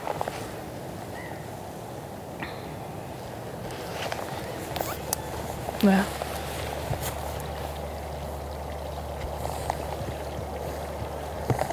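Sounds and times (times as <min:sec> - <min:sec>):
babbling stream: 0:00.0 - 0:11.7
small water splashes in a stream: 0:03.7 - 0:11.7
speech: 0:05.8 - 0:06.2.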